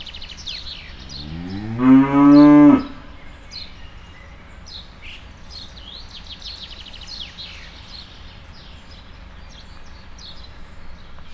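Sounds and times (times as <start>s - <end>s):
Hungarian Simmental cow lowing in a zoo: 0.9s - 3.2s.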